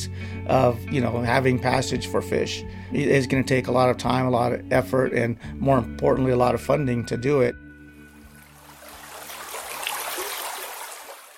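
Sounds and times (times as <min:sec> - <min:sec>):
speech: 0:00.0 - 0:07.6
mountain creek water flowing: 0:07.9 - 0:11.3.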